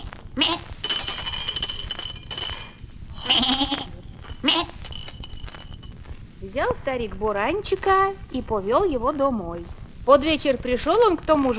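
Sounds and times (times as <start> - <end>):
rustling: 0.0 - 10.1
ram bleating: 0.4 - 0.8, 3.1 - 4.8
faint jingling: 0.8 - 2.8, 4.2 - 6.1
speech: 6.6 - 11.5.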